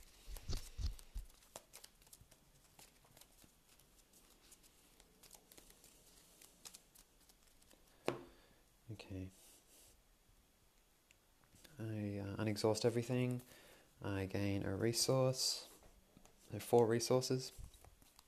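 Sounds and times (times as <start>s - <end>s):
deck of cards being shuffled: 0.0s - 8.2s
speech: 9.0s - 9.4s, 11.8s - 15.7s, 16.5s - 17.6s.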